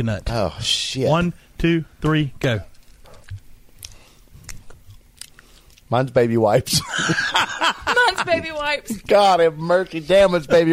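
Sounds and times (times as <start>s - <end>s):
speech: 0.0s - 2.7s, 5.9s - 10.7s
people chewing jelly beans: 2.5s - 6.0s
laughter: 6.7s - 9.1s.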